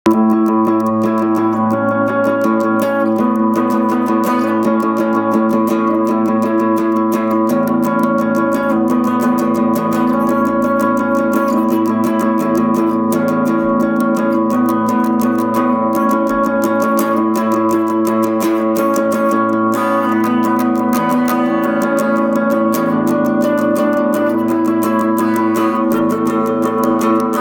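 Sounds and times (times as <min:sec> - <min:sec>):
intro riff: 0:00.0 - 0:27.4.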